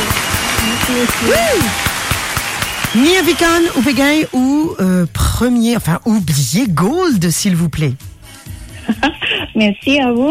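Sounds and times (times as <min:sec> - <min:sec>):
applause for a guest on a morning radio show: 0:00.0 - 0:04.2
speech: 0:00.9 - 0:01.9, 0:02.9 - 0:08.2, 0:08.8 - 0:10.2.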